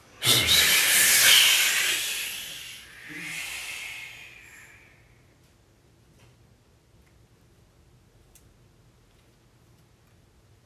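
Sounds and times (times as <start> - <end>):
forceful breath blown out during a kneeling yoga breathing exercise: 0.2 - 5.0.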